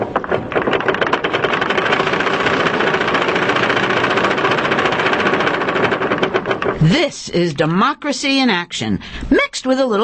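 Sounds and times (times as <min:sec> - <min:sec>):
raffle drum full of lottery tickets spinning for a contest draw: 0:00.0 - 0:07.8
speech: 0:06.9 - 0:10.0.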